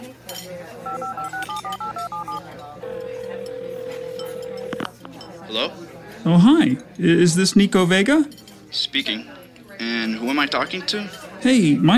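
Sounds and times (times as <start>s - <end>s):
telephone keypad dialing tones: 0.9s - 4.9s
faint clinks: 2.9s - 5.4s
speech: 5.5s - 11.9s.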